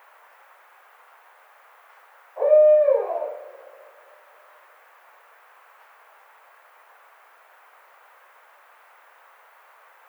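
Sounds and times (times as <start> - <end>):
barred owl hooting: 2.4 - 4.0.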